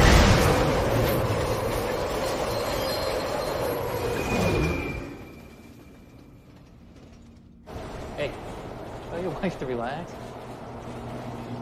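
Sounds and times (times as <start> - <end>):
subway train hurtling through a tunnel: 0.2 - 11.6
thin high metallic squeals of subway train wheels on rails: 0.5 - 7.1
speech: 9.5 - 10.3.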